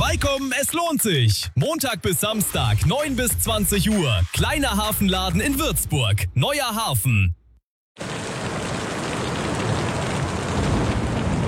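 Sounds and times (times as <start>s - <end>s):
speech: 0.1s - 7.4s
steady heavy rain hitting a surface: 8.0s - 11.4s.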